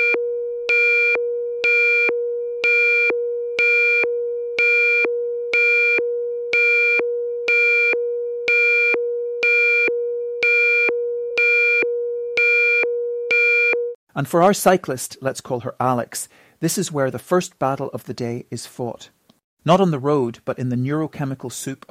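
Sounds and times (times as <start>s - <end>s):
phone alarm with rapid electronic beeps: 0.0s - 14.0s
steady droning tone: 0.0s - 14.0s
speech: 14.2s - 21.8s.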